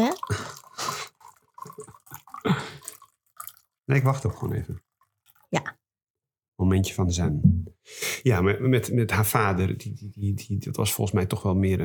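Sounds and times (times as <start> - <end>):
water poured into a glass: 0.0 - 5.4
speech: 3.9 - 4.9, 6.7 - 7.5, 8.2 - 11.8.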